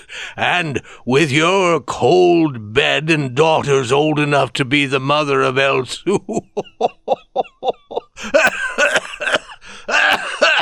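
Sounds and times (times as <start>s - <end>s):
speech: 0.4s - 8.4s
laughter: 5.9s - 10.6s
person having a coughing fit: 8.2s - 10.6s.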